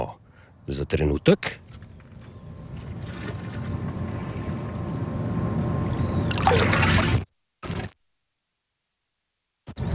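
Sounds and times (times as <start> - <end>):
speech: 0.1 - 1.7
sea water lapping and sloshing at a campsite: 2.7 - 5.0, 6.2 - 7.9
brighter sea water splash: 6.3 - 8.0.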